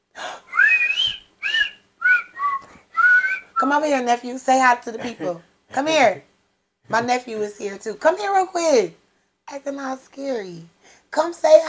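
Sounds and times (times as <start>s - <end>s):
person whistling short melodic phrases: 0.5s - 3.6s
speech: 3.7s - 6.3s, 6.9s - 11.6s.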